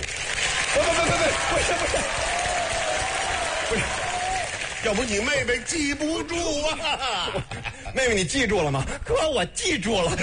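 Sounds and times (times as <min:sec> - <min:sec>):
live audience applause: 0:00.0 - 0:06.4
laughter: 0:00.8 - 0:02.5, 0:06.4 - 0:08.2
speech: 0:04.9 - 0:10.2.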